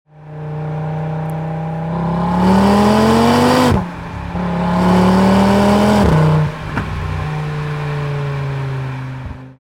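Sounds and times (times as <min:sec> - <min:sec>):
Audi RS 3 Sportback 8V exhaust system while driving: 0:00.2 - 0:09.6.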